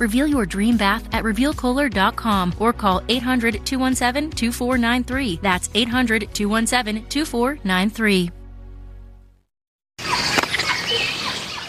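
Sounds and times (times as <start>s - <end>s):
speech: 0.0s - 8.4s
monkey squealing: 10.0s - 11.6s.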